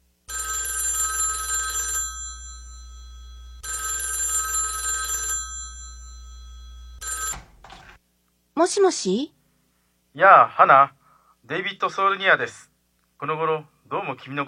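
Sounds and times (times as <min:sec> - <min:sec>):
telephone ringing: 0:00.3 - 0:08.0
steady low hum: 0:02.3 - 0:03.7, 0:05.6 - 0:07.0
speech: 0:08.6 - 0:09.4, 0:10.2 - 0:14.4.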